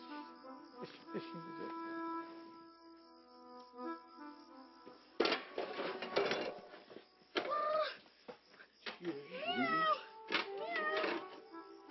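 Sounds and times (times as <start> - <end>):
speech: 1.1 - 1.7
clinking household clatter: 5.2 - 7.5, 10.3 - 11.4
cat meowing: 9.3 - 11.3.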